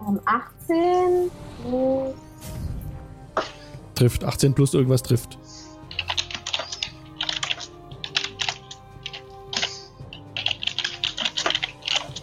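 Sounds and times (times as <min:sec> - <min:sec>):
speech: 0:00.1 - 0:02.6, 0:03.4 - 0:05.6
typing on a computer keyboard: 0:05.9 - 0:12.2.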